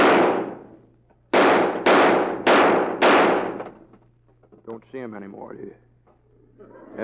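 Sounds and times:
gunshots from guns fired at the knobs on a street sign: 0.0 - 3.8
speech: 4.7 - 5.9, 6.6 - 7.0.

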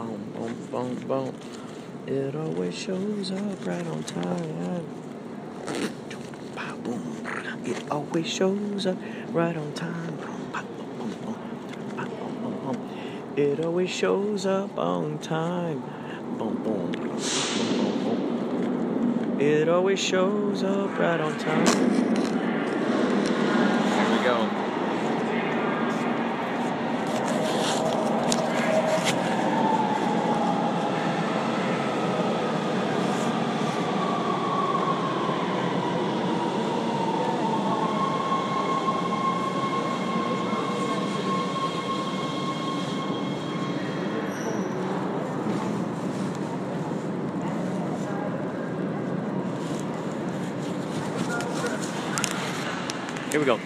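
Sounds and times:
train rumbling along the rails: 0.0 - 53.6
speech: 0.7 - 5.0, 6.9 - 10.4, 13.4 - 18.1, 19.4 - 22.3
faint voices murmuring: 5.8 - 14.4, 19.4 - 53.6
thin metallic wheel squeal: 39.2 - 44.8.

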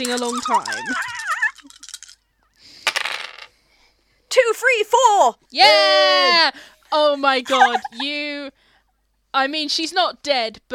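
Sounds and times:
speech: 0.0 - 1.2, 4.6 - 8.6, 9.3 - 10.7
three dice rattling and tumbling across a hard surface: 0.0 - 2.2, 2.8 - 3.5
laughter: 0.3 - 1.9, 7.2 - 8.2.

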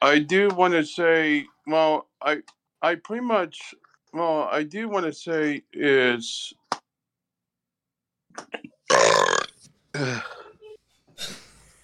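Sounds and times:
speech: 0.1 - 6.6, 8.4 - 9.3, 10.0 - 10.4
small throaty sounds: 8.4 - 11.6
loud drawn-out burp: 8.9 - 11.5.

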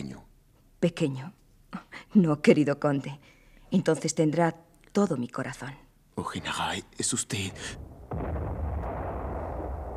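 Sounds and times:
speech: 0.8 - 8.4
heavy cannon blast from an artillery battery firing at a fort: 7.6 - 9.9.

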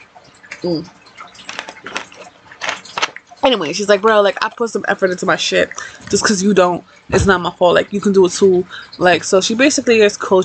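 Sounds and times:
speech: 0.6 - 1.0, 3.4 - 10.4
person sipping and swallowing water: 1.4 - 3.2.

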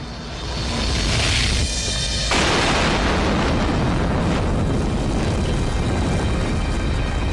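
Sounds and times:
kerosene-fuelled rocket engine roaring from combustion instability on test: 0.0 - 7.3.

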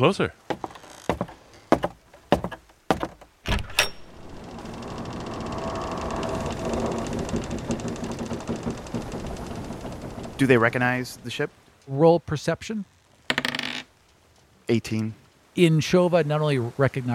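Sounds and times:
speech: 0.0 - 0.6, 10.4 - 12.9, 14.7 - 17.1
desk drawer clunking in sharp wooden knocks: 0.5 - 11.4, 13.3 - 13.9
desk drawer sliding open with a rattling scrape: 3.5 - 11.2.

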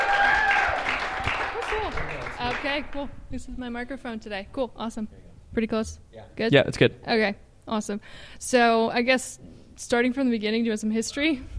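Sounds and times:
live audience applause: 0.0 - 2.9
speech: 2.6 - 11.5.

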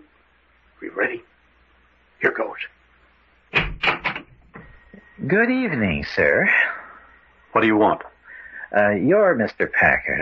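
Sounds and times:
speech: 1.0 - 1.3, 2.2 - 2.8, 5.2 - 6.8, 7.6 - 8.1, 8.7 - 10.2
door opening with knocking clunks and rattles: 3.5 - 4.8.

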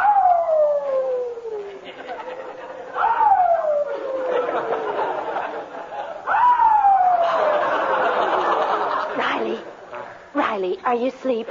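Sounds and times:
new puppy howling in its bed in a garage at night: 0.0 - 1.8, 3.0 - 4.7
laughter: 1.6 - 6.3, 7.1 - 10.0
speech: 10.9 - 11.4.

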